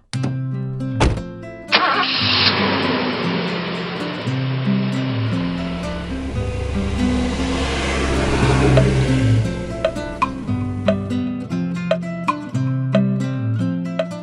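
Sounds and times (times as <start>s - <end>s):
music: 0.4s - 14.2s
bus engine starting and rumbling: 1.5s - 11.5s.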